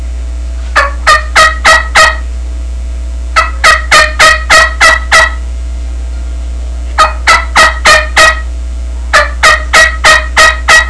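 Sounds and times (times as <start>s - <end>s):
turkey yelps: 0.8s - 2.3s, 3.4s - 5.4s, 7.0s - 8.5s, 9.2s - 10.8s.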